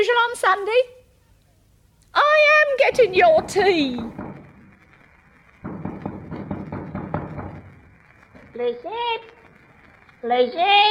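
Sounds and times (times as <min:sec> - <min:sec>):
speech: 0:00.0 - 0:01.0, 0:02.2 - 0:04.2, 0:08.6 - 0:09.4, 0:10.2 - 0:10.8
firm knocks on a front door: 0:03.3 - 0:04.4, 0:05.6 - 0:07.7.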